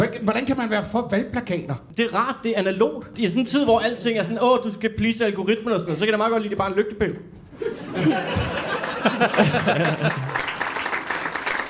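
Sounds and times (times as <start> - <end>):
speech: 0.1 - 10.4
laughter: 7.6 - 10.5
crowd clapping in applause: 8.0 - 11.6.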